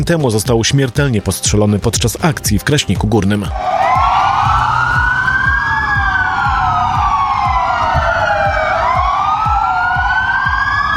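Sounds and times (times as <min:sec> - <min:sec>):
speech: 0:00.0 - 0:03.8
low rhythmic pulses: 0:03.5 - 0:10.9
police car sirens wailing in tribute across Poland: 0:03.5 - 0:10.9.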